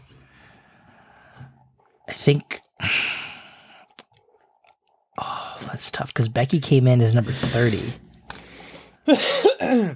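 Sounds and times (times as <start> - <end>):
speech: 2.1 - 3.0, 5.8 - 8.0, 9.1 - 9.9
person coughing after swallowing down the wrong pipe: 9.1 - 9.9.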